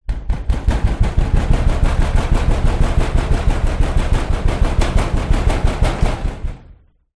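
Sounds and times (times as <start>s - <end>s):
fist hitting metal wall hard: 0.0s - 6.7s.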